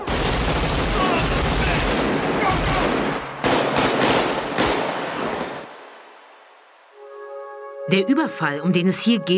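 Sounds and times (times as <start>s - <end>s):
dense gunfire in a shootout: 0.0s - 6.4s
speech: 7.9s - 9.3s.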